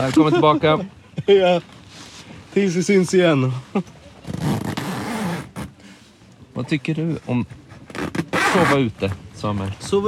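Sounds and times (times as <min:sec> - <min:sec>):
speech: 0:00.0 - 0:01.8, 0:02.6 - 0:04.4, 0:06.6 - 0:07.6, 0:08.5 - 0:10.0
zipper being pulled: 0:04.2 - 0:05.7, 0:07.9 - 0:08.9.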